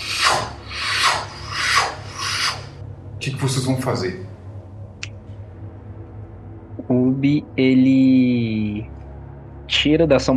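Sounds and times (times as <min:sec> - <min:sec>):
steady cyclic rasping whir: 0:00.0 - 0:02.8
low hum: 0:00.0 - 0:10.3
speech: 0:03.2 - 0:04.3, 0:06.9 - 0:09.0, 0:09.8 - 0:10.3.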